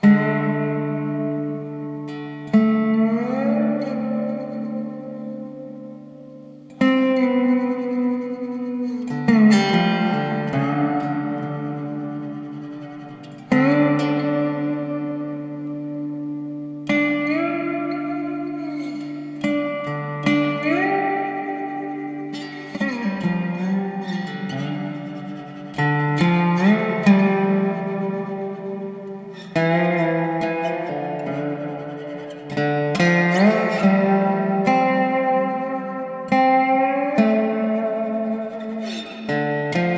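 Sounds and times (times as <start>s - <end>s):
dobro guitar: 0.0s - 39.9s.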